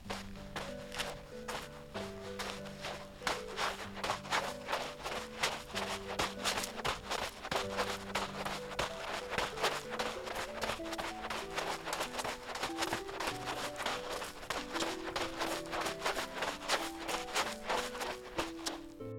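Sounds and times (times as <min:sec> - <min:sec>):
running footsteps on sand: 0:00.0 - 0:19.1.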